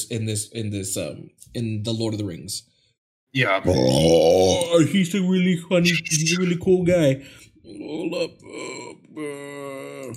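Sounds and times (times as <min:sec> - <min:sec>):
speech: 0:00.1 - 0:02.7, 0:03.3 - 0:10.1
voice imitating burping with croaky throaty bursts: 0:03.6 - 0:04.8, 0:07.7 - 0:10.1.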